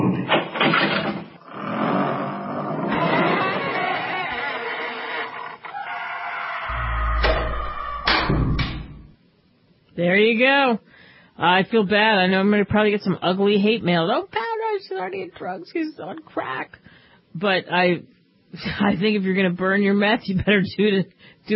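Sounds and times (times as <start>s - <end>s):
heavy dungeon door grinding and creaking as it is shoved shut: 0.1s - 9.1s
heavy dungeon door landing with deep booming thuds: 6.7s - 9.1s
speech: 10.2s - 21.5s.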